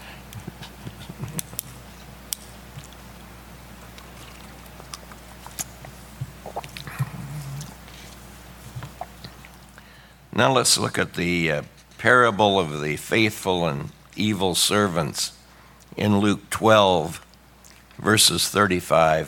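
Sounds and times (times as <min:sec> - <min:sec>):
steady low hum: 0:00.0 - 0:10.4
person sipping and swallowing water: 0:03.7 - 0:10.0
small wet mouth clicks: 0:03.8 - 0:08.2, 0:08.8 - 0:09.7
speech: 0:10.4 - 0:15.4, 0:16.0 - 0:17.2, 0:18.0 - 0:19.2.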